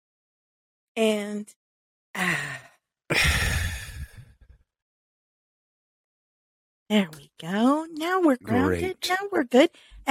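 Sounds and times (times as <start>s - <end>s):
speech: 1.0s - 1.6s, 2.2s - 3.6s, 6.9s - 10.0s
deep breath in during a guided breathing exercise: 2.2s - 4.6s.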